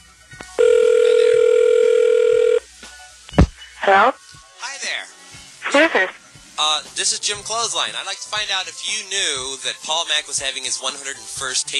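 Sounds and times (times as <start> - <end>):
telephone ring tone on a call for a phone survey: 0.6 - 2.6
speech: 3.9 - 4.2, 5.8 - 11.7.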